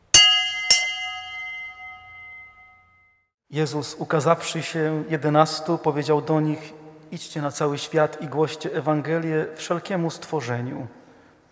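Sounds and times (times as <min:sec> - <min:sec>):
Sunday church bell ringing: 0:00.0 - 0:03.0
speech: 0:03.5 - 0:11.5.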